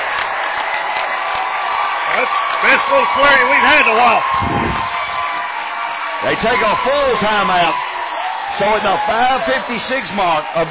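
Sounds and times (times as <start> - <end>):
scattered claps: 0.0 - 6.5
home crowd cheering at basketball game in indoor arena: 0.0 - 10.6
speech: 2.6 - 5.0, 6.2 - 7.8, 8.6 - 10.6.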